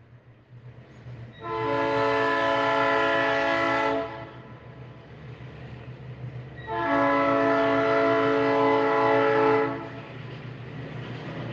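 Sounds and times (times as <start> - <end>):
steady low rumble of a passing train: 0.0 - 11.5
long loud train horn blasts: 1.4 - 4.6, 6.6 - 10.0.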